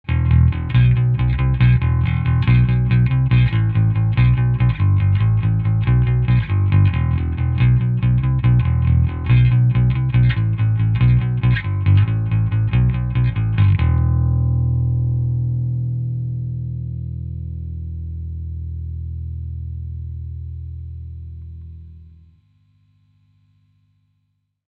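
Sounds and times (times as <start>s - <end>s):
bass recorded close: 0.0s - 23.1s.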